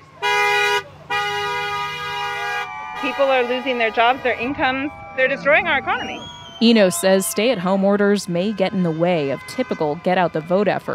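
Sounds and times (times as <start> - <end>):
car horns honking at a protest: 0.0 - 7.9
low traffic rumble: 0.0 - 10.9
speech: 3.0 - 10.9.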